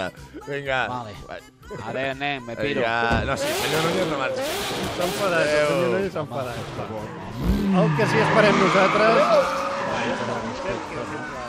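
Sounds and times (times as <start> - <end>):
speech: 0.0 - 11.4
car driving off with tires skidding: 3.3 - 11.4.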